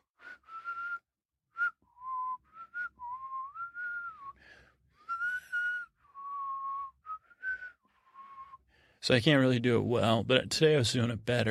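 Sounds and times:
person whistling a wavering tune on the exhale: 0:00.1 - 0:04.4, 0:05.0 - 0:08.6
speech: 0:09.0 - 0:11.4.

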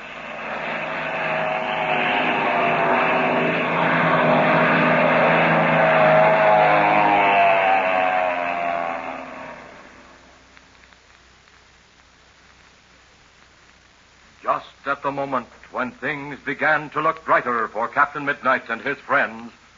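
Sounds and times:
propeller plane engine roaring as it swoops overhead: 0:00.0 - 0:10.4
speech: 0:15.2 - 0:19.6.

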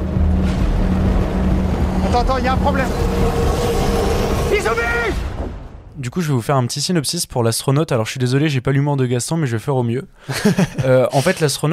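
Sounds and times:
rocket engine ignition roar: 0:00.0 - 0:05.6
speech: 0:02.1 - 0:03.9, 0:04.6 - 0:05.2, 0:06.0 - 0:11.7
laughter: 0:10.3 - 0:11.5.

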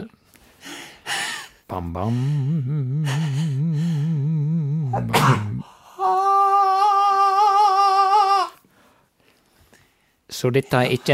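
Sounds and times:
person moaning: 0:01.7 - 0:08.6
speech: 0:01.8 - 0:04.0, 0:04.9 - 0:06.2, 0:10.4 - 0:11.1
person crying out in pain from cracked ribs: 0:04.8 - 0:08.6
sneeze: 0:04.9 - 0:05.6.

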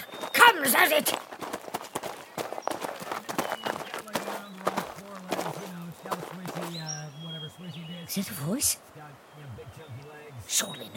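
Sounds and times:
running mountain horse hoofbeats: 0:00.0 - 0:07.2
speech: 0:00.5 - 0:01.4, 0:08.1 - 0:08.9, 0:10.6 - 0:10.9.

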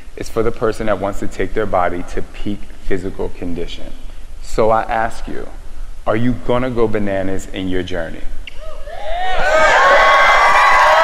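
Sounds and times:
speech: 0:00.2 - 0:08.4
crowd cheering and whooping: 0:08.6 - 0:11.0.

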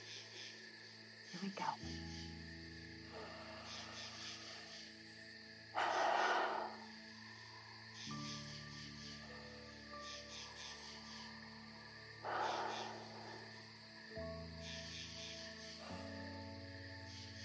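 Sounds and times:
soft steady tonal background: 0:00.0 - 0:17.4
speech: 0:01.4 - 0:02.3
deep slow relaxing breaths: 0:02.9 - 0:07.6, 0:12.2 - 0:13.8.

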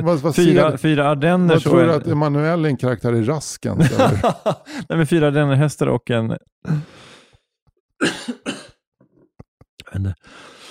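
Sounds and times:
speech: 0:00.0 - 0:07.0, 0:08.0 - 0:08.5, 0:09.9 - 0:10.5
laughter: 0:03.8 - 0:04.9
person coughing mid-conversation: 0:08.0 - 0:08.8.

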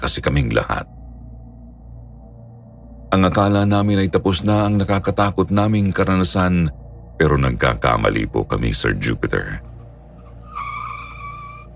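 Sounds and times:
speech: 0:00.0 - 0:01.0, 0:03.1 - 0:09.7
car engine drone: 0:00.0 - 0:10.6
car tires squealing in a skid on a residential subdivision street: 0:09.6 - 0:11.7.

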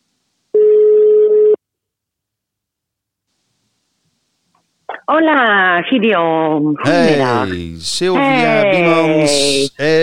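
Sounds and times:
telephone tone from a phone call being placed: 0:00.6 - 0:01.6
speech: 0:05.1 - 0:10.0.

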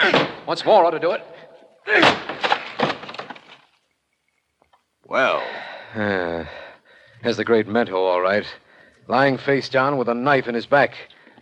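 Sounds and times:
speech: 0:00.0 - 0:02.3, 0:05.1 - 0:06.6, 0:07.2 - 0:11.4
wooden door being forced open: 0:01.9 - 0:03.7
debris clattering: 0:01.9 - 0:04.0.

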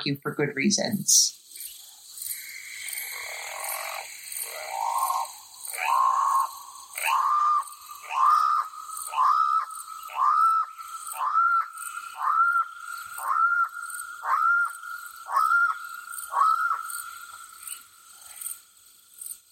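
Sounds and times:
speech: 0:00.0 - 0:01.4
faint higher-pitched chirping: 0:00.8 - 0:17.8
channel-billed cuckoo harsh squawking call: 0:02.3 - 0:17.7.

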